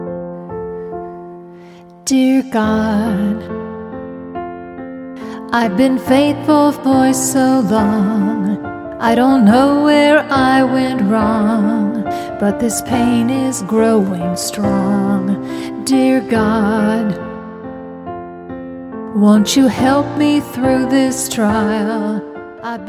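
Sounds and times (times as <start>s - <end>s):
female vocal: 2.0s - 3.5s, 5.2s - 17.4s, 19.2s - 22.8s.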